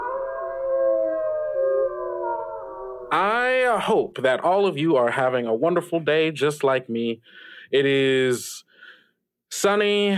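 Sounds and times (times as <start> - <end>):
wolf pack howling: 0.0 - 3.1
speech: 3.1 - 8.9, 9.5 - 10.1.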